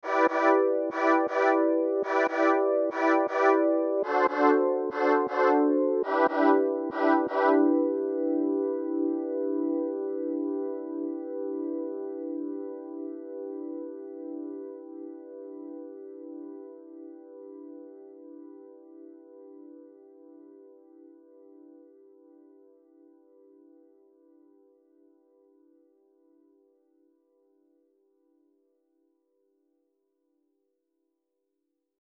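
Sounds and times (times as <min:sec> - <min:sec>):
retro synthesizer: 0:00.0 - 0:11.4.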